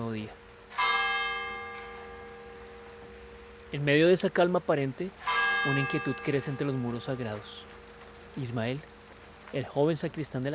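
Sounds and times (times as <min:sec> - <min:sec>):
church bell ringing in the morning over a damp city at dawn: 0:00.0 - 0:08.6
speech: 0:03.7 - 0:07.7, 0:08.4 - 0:08.9, 0:09.5 - 0:10.5.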